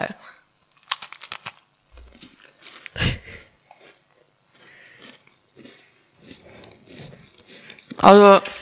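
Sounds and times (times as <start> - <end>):
crisp crunching of a dry snack with rucola and grana: 0.7 - 3.0, 3.6 - 8.6
soft chewing: 2.0 - 8.0
speech: 8.0 - 8.6.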